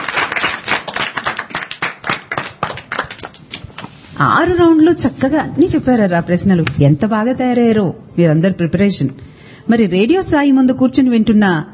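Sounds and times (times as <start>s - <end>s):
audience clapping for children after a quiz round: 0.0s - 4.0s
speech: 4.2s - 11.7s.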